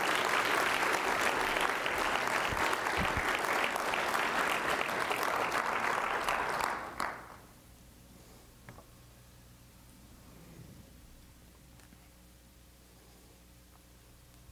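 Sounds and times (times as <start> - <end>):
audience at a worship service applauding: 0.0 - 7.4.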